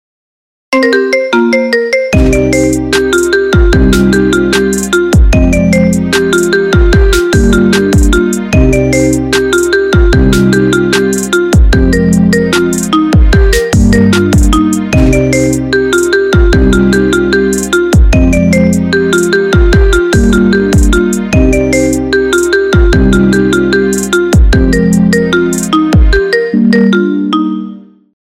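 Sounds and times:
sad marimba ringtone: 0.8s - 28.0s.

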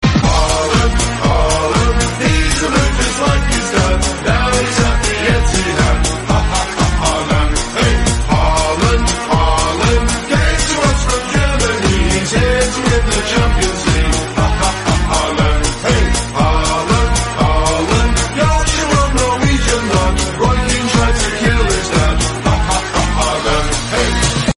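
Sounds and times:
football song: 0.0s - 24.5s.

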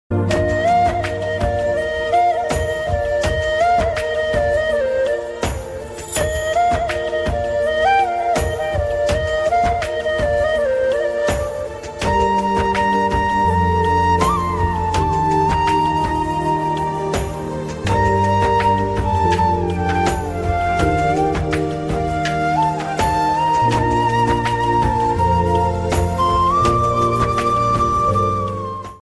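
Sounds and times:
romantic flute ringtone: 0.3s - 29.0s.

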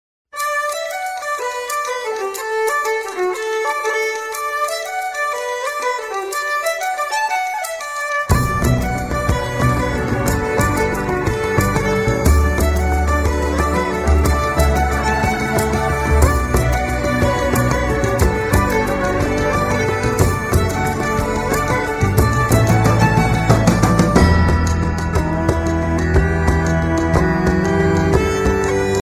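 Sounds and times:
Irish traditional folk music ringtone: 0.4s - 29.0s.

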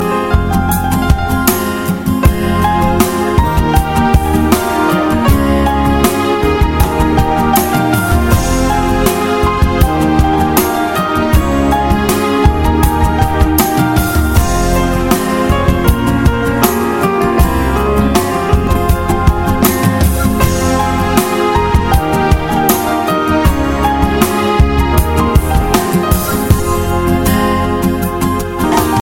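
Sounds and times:
guitar and piano solo ringtone: 0.0s - 29.0s.

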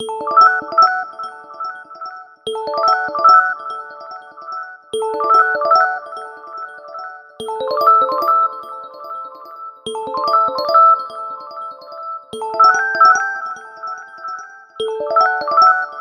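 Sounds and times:
ringtone on an iPhone: 0.0s - 16.0s.

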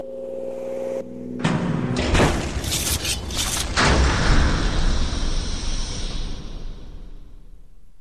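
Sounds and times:
gate opening text message ringtone: 1.5s - 6.4s.

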